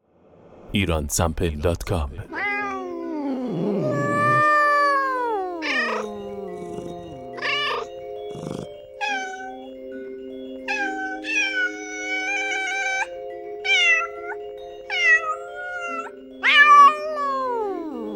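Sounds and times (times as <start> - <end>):
speech: 0.7 - 2.4, 3.5 - 4.0
cat meowing: 2.3 - 9.7, 10.7 - 13.1, 13.7 - 18.1.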